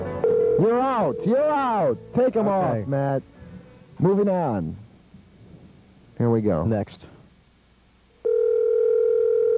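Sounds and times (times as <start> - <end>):
telephone ringback tone on an outgoing call: 0.2 - 1.9, 8.2 - 9.5
speech: 0.6 - 3.4, 4.0 - 4.8, 6.2 - 7.1.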